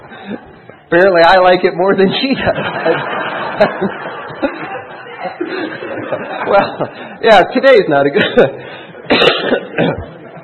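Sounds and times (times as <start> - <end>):
speech: 0.2 - 10.1
laughter: 2.0 - 7.2, 8.1 - 10.4
person coughing: 9.1 - 10.1.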